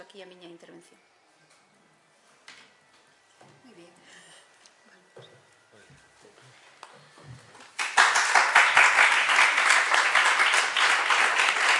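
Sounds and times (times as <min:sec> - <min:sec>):
speech: 0:00.1 - 0:01.2
audience applause: 0:07.7 - 0:11.7.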